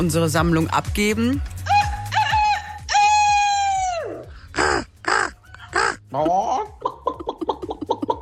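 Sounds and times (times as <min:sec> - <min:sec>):
speech: 0:00.0 - 0:01.6, 0:06.1 - 0:06.4
listeners imitating crow-like bird calls with their voices: 0:01.6 - 0:06.8.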